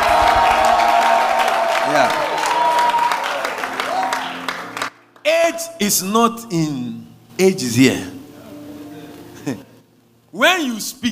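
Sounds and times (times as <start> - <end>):
crowd applause: 0.0 - 5.0
speech: 5.7 - 8.2, 9.5 - 9.7, 10.3 - 11.1.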